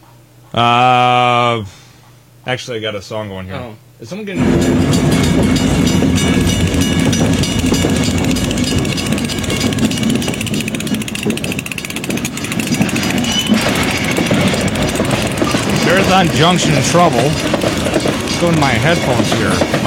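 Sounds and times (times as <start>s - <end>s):
speech: 0.5s - 1.8s, 2.4s - 6.4s, 16.2s - 19.8s
metallic rattling of train: 4.4s - 19.8s
train ride rumbling with low roar: 4.4s - 19.8s
wheels clattering on track: 4.4s - 19.8s.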